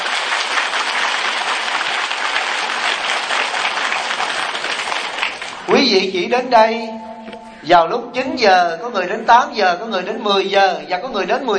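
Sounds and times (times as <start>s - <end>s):
large audience applauding: 0.0s - 5.7s
speech: 5.8s - 7.0s, 7.6s - 11.5s.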